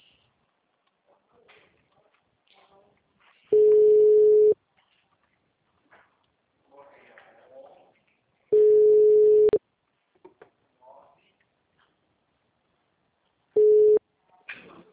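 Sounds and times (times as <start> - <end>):
ringback tone of an outgoing telephone call: 3.6 - 4.6, 8.6 - 9.6, 13.6 - 14.0.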